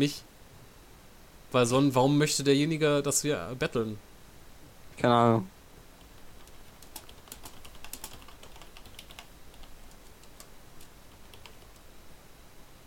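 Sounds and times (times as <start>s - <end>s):
speech: 0.0s - 0.3s, 1.5s - 4.1s, 5.0s - 5.6s
typing a message on a computer keyboard: 6.0s - 11.9s.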